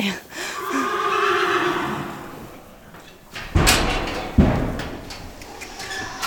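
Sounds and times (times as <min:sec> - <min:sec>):
horse whinnying in a barn in Sisters, Oregon, waiting for dinner: 0:00.4 - 0:06.2
sharp thuds of hooves or a stall door banging: 0:02.0 - 0:06.2.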